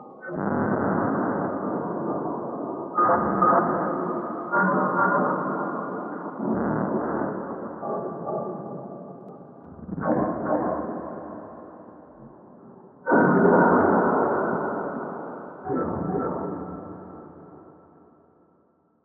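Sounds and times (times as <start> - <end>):
cave ambience: 0.0 - 18.4.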